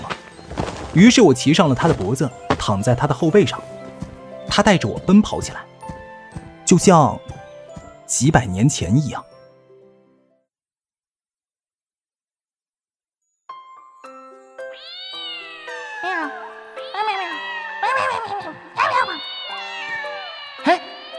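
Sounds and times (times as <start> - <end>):
speech: 1.0 - 3.8, 4.5 - 5.7, 6.7 - 7.4, 8.1 - 9.3
kittens meowing: 14.7 - 21.1.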